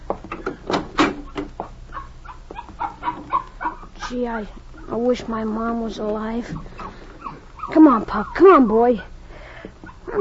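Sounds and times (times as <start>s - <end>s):
speech: 0.1s - 0.4s, 4.1s - 6.8s, 7.8s - 9.1s
puppy yapping with high-pitched barks and yips: 1.9s - 4.9s, 6.5s - 9.1s, 9.8s - 10.1s.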